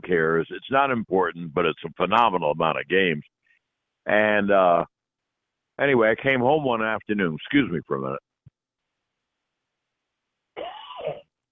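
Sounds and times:
speech: 0.0s - 3.4s, 4.0s - 4.9s, 5.8s - 8.3s
man coughing: 10.6s - 11.3s.

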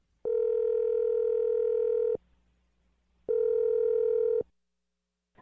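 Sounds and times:
telephone dial tone: 0.3s - 2.2s, 3.3s - 4.5s.

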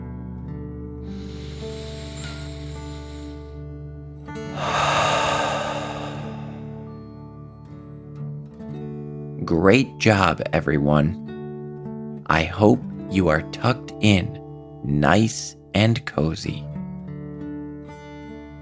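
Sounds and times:
deep breath in and out during a relaxation exercise: 1.0s - 3.7s, 4.4s - 7.1s
speech: 9.5s - 11.2s, 12.4s - 16.7s.

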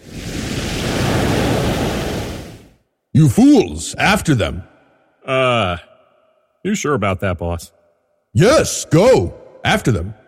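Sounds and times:
ocean waves rushing: 0.0s - 2.8s
speech: 3.2s - 5.9s, 6.6s - 10.2s.

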